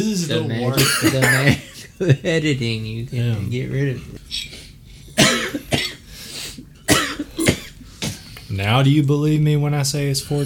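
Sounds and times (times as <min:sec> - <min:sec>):
speech: 0:00.0 - 0:04.6, 0:08.6 - 0:10.4
harsh raspy coughing fit: 0:00.8 - 0:01.6, 0:05.2 - 0:06.1, 0:06.9 - 0:08.2.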